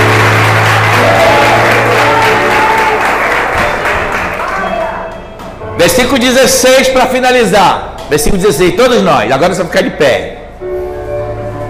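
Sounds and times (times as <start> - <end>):
church audience applauding: 0.0 - 5.4
speech: 5.8 - 10.4.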